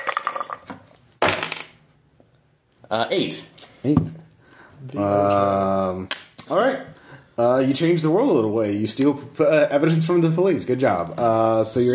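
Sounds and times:
two six-sided dice rattling and clattering on a hard table: 1.2 - 1.8
speech: 2.9 - 4.2, 4.8 - 11.9.

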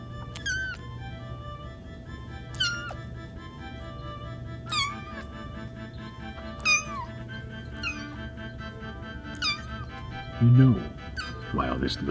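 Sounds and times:
kitten mewing with thin high-pitched cries: 0.0 - 1.3, 2.3 - 11.6
low steady hum: 0.0 - 12.1
speech: 10.4 - 10.9, 11.5 - 12.1.

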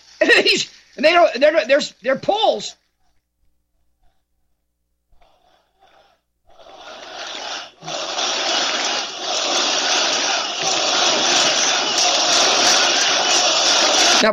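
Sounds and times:
speech: 0.5 - 2.8
huge outdoor crowd roaring and screaming: 6.7 - 14.3.

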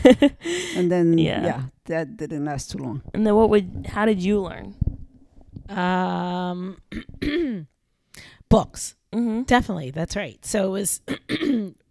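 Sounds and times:
speech: 0.0 - 4.9, 5.7 - 11.8
throat-clearing cough: 6.9 - 7.6, 11.1 - 11.8.

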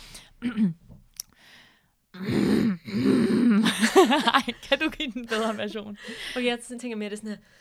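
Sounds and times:
speech: 0.4 - 0.9, 2.2 - 3.1, 4.0 - 7.5
voice imitating a woman's strained pushing grunts in labor: 2.2 - 3.8.

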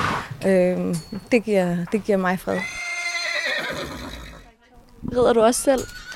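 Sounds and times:
speech: 0.4 - 2.8, 5.1 - 6.0
horse in a stable whinnying: 2.6 - 4.4, 5.8 - 6.1.

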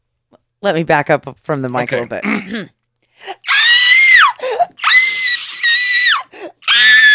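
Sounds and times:
speech: 0.6 - 3.5
voice imitating a man's shrill high-pitched scream: 3.4 - 7.1.

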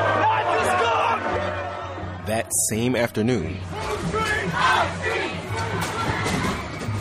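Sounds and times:
large rally crowd shouting during clashes with protesters: 0.0 - 2.2, 3.6 - 6.9
speech: 2.4 - 5.7.

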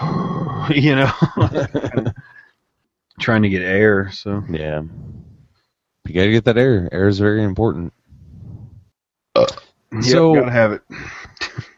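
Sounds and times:
low rumbling burp: 0.0 - 0.8, 9.4 - 9.8
speech: 0.7 - 2.4, 3.2 - 5.3, 6.1 - 8.0, 9.4 - 11.7
laughter: 1.0 - 2.4.

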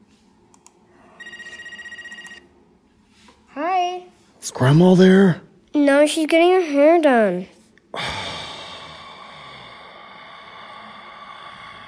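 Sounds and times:
soft clicks: 0.5 - 0.8
telephone ringing: 1.2 - 2.5
speech: 4.5 - 8.0.

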